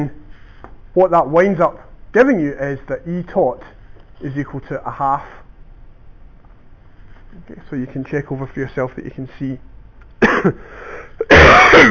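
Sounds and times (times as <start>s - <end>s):
speech: 0.0s - 0.2s, 1.0s - 5.4s, 7.3s - 11.9s
person coughing: 10.2s - 11.9s
person clearing the throat: 11.2s - 11.9s.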